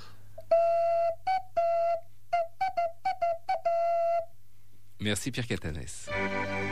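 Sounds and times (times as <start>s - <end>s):
clay whistle from La Borne blown in hollow tones: 0.0s - 4.4s
speech: 5.0s - 6.6s.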